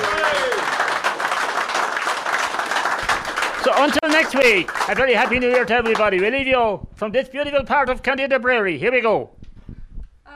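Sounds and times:
large audience applause: 0.0 - 6.4
speech: 3.8 - 9.4.

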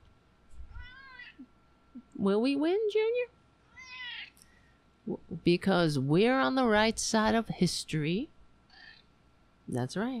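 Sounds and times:
cat meowing: 0.7 - 1.4, 3.7 - 4.3
speech: 2.2 - 3.4, 5.1 - 8.3, 9.7 - 10.1.

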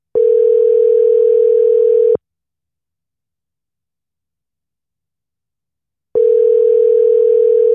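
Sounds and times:
outgoing phone call electronic ringing tone: 0.2 - 2.2, 6.2 - 7.7.

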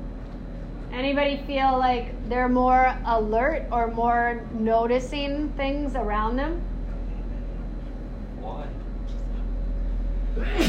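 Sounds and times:
steady low hum: 0.0 - 10.6
speech: 1.0 - 6.7, 10.4 - 10.6
single sharp sneeze: 10.4 - 10.6.

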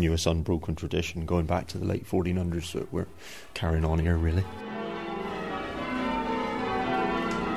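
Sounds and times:
speech: 0.0 - 4.7
church bells ringing in Chagford: 4.2 - 7.5.

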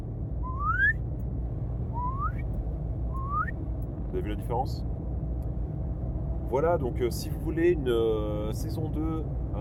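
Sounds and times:
steady low hum: 0.0 - 9.5
person whistling short upward-sliding notes: 0.4 - 1.0, 2.0 - 2.4, 3.2 - 3.6
speech: 4.2 - 4.9, 6.5 - 9.5.

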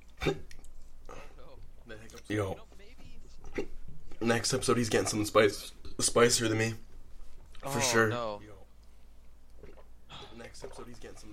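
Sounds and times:
speech: 0.2 - 0.5, 2.3 - 2.7, 3.6 - 6.9, 7.6 - 8.6, 10.5 - 11.3
person hiccuping: 0.2 - 0.6.

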